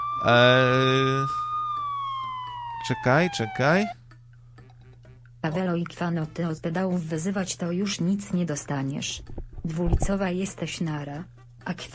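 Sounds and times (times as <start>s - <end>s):
sirens wailing: 0.0s - 4.0s
speech: 0.2s - 1.4s, 2.8s - 4.0s, 5.4s - 11.9s.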